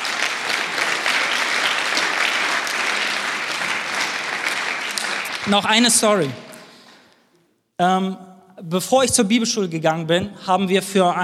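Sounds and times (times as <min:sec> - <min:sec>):
crowd applauding God: 0:00.0 - 0:06.4
speech: 0:05.5 - 0:06.4, 0:07.8 - 0:11.2.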